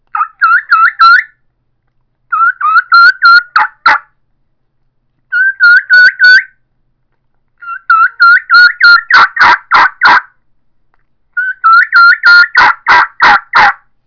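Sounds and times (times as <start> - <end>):
eastern turkey mouth call kee-kee runs: 0.1 - 1.4, 2.3 - 4.1, 5.3 - 6.5, 7.6 - 10.3, 11.4 - 13.8.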